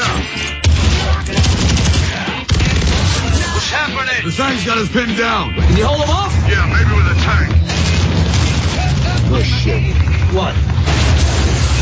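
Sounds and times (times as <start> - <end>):
rapid gunfire in an action-film video game: 0.0 - 3.7, 7.6 - 11.8
speech: 4.4 - 7.6, 9.3 - 10.7.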